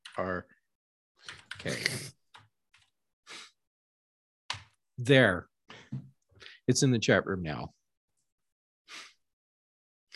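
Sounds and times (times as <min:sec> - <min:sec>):
speech: 0:00.2 - 0:00.5, 0:05.1 - 0:06.0, 0:06.7 - 0:07.8
typing on a computer keyboard: 0:01.2 - 0:02.9.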